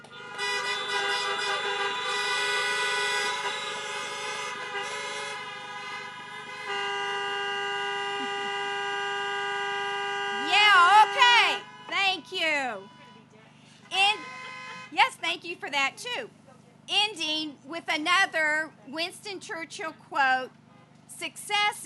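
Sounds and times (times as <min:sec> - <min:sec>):
several car horns honking in applause: 0:00.0 - 0:15.9
speech: 0:15.7 - 0:20.6, 0:21.2 - 0:21.8.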